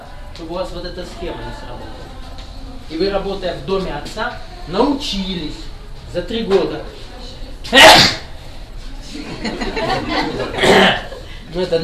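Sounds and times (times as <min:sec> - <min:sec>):
murmuring voices and low chatter: 0:00.0 - 0:11.8
speech: 0:00.4 - 0:02.2, 0:02.9 - 0:07.0, 0:07.7 - 0:08.2, 0:11.6 - 0:11.8
person sneezing: 0:07.7 - 0:08.4, 0:10.6 - 0:11.1
laughter: 0:09.1 - 0:11.4.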